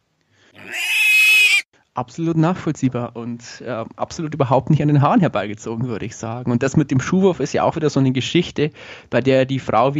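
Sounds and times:
piglets squealing: 0:00.6 - 0:01.7
speech: 0:02.0 - 0:09.9.

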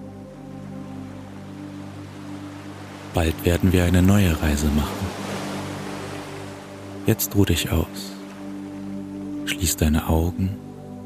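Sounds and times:
ocean waves: 0:00.0 - 0:11.0
speech: 0:03.1 - 0:05.2, 0:07.1 - 0:08.2, 0:09.6 - 0:10.7.

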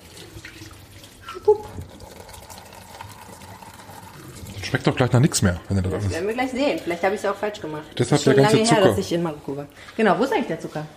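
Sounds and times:
tea rinse water pouring into a sink: 0:00.0 - 0:07.4
sink drain gurgling: 0:00.0 - 0:07.8
speech: 0:04.7 - 0:10.9.

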